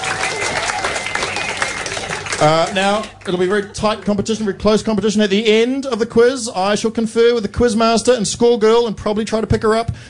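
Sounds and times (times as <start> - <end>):
audience applause at a quiz night: 0.0 - 4.2
speech: 2.4 - 10.0.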